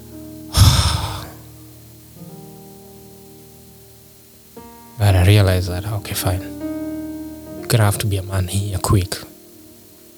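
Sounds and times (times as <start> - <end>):
deep breath: 0.5 - 1.5
speech: 5.0 - 6.6, 7.7 - 9.3.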